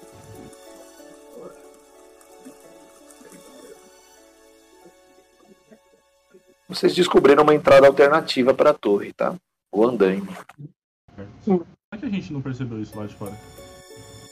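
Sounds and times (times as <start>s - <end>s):
light rain tapering off into drips: 0.0s - 6.0s
speech: 6.7s - 10.8s, 11.4s - 13.7s.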